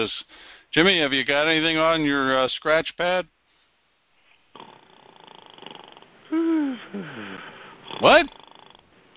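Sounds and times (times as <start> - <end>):
speech: 0.0 - 3.4, 6.3 - 8.4
person snoring: 4.5 - 8.8
person groaning: 6.3 - 8.3.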